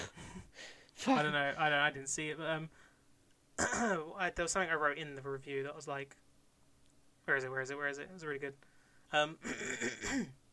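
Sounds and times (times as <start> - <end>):
speech: 1.0 - 2.9, 3.6 - 6.2, 7.3 - 10.4
throat clearing into a microphone: 3.6 - 4.0, 9.4 - 10.4.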